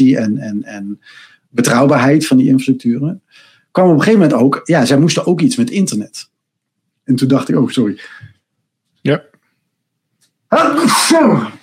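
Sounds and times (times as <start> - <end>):
speech: 0.0 - 6.3, 7.1 - 8.3, 9.0 - 9.3, 10.5 - 11.6
sneeze: 10.6 - 11.6.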